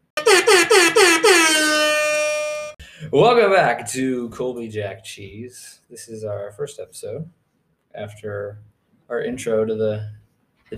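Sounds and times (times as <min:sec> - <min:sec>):
loud air horn blasts: 0:00.0 - 0:02.8
speech: 0:03.1 - 0:10.7.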